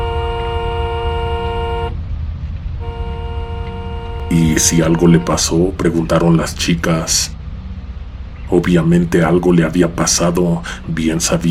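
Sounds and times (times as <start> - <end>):
car horn honking: 0.0 - 2.0, 2.8 - 5.8
low rumble of a vehicle engine: 0.0 - 11.5
speech: 4.3 - 7.4, 8.5 - 11.5.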